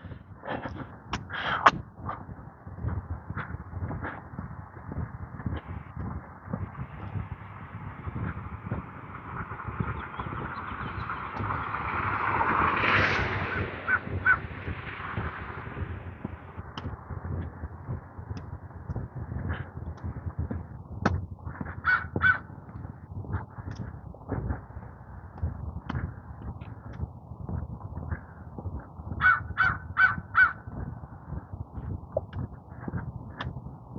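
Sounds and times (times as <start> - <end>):
steady outdoor hum: 0.0 - 33.9
swelling whoosh: 9.7 - 16.6
crow on a roof peak cawing in short harsh bursts: 13.9 - 14.5, 21.8 - 22.4, 29.2 - 30.6.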